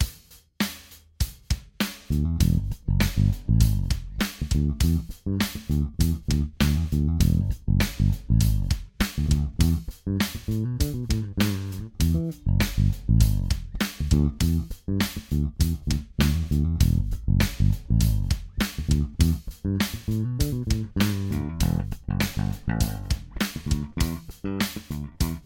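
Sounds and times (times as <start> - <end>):
bass: 0.0 - 25.4.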